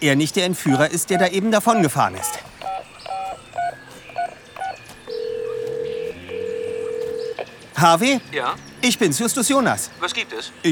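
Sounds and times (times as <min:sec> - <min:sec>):
speech: 0:00.0 - 0:02.5, 0:07.8 - 0:10.7
touch-tone beeps of a telephone number being dialed to call a hotel room: 0:00.7 - 0:07.5.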